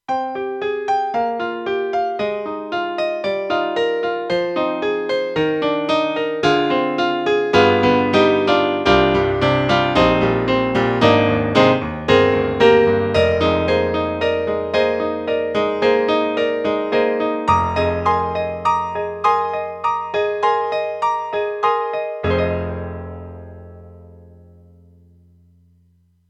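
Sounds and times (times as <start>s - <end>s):
AKAI SG01k sampled piano: 0.0s - 26.2s.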